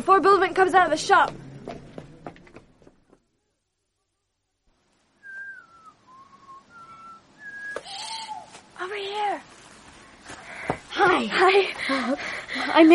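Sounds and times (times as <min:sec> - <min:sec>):
speech: 0:00.0 - 0:01.4, 0:11.9 - 0:12.9
faint noise: 0:00.0 - 0:12.9
person whistling a slow melodic tune: 0:05.2 - 0:07.9
rustle: 0:06.0 - 0:12.8.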